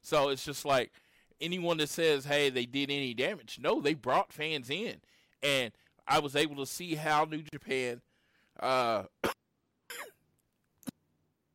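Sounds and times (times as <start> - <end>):
speech: 0.0 - 9.1
person coughing: 9.2 - 10.2.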